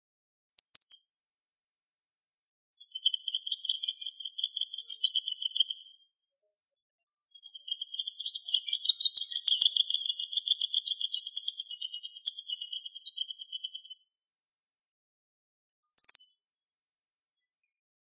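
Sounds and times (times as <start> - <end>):
songbird long high rapidly pulsed trills: 0.6 - 1.5, 2.8 - 6.0, 7.3 - 14.0, 16.0 - 17.0.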